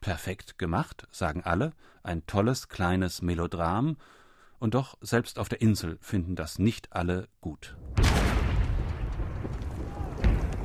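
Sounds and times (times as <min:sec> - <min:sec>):
speech: 0:00.1 - 0:08.0
distant cannon fire rumbling: 0:07.9 - 0:10.6.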